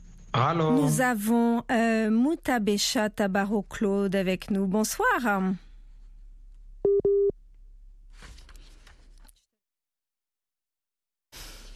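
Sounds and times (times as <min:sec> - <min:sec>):
speech: 0:00.4 - 0:05.6
telephone busy signal beeps on a dropped line: 0:06.9 - 0:07.3.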